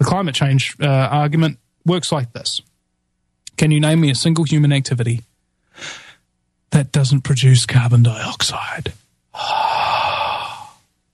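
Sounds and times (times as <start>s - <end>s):
speech: 0.1s - 2.7s, 3.6s - 6.0s, 6.7s - 9.7s
person exhaling: 5.7s - 6.2s, 9.4s - 10.8s.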